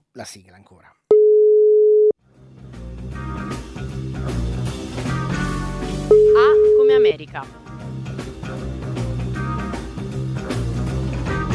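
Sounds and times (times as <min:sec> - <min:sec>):
speech: 0:00.2 - 0:01.0, 0:06.4 - 0:07.6
telephone tone while placing a call: 0:01.1 - 0:02.1
full band playing music: 0:03.1 - 0:06.8, 0:07.6 - 0:11.5.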